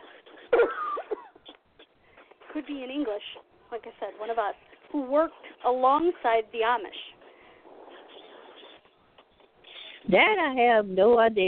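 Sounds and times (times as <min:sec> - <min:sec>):
brief voiced strained sounds: 0:00.0 - 0:10.8
person clearing an itchy throat: 0:00.4 - 0:02.0
speech: 0:02.6 - 0:07.1, 0:10.1 - 0:11.4.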